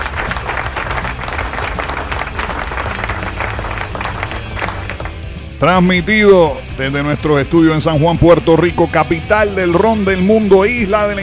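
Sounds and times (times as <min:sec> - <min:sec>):
audience applause welcoming the start of a rock show: 0:00.0 - 0:05.3
speech: 0:05.6 - 0:11.2.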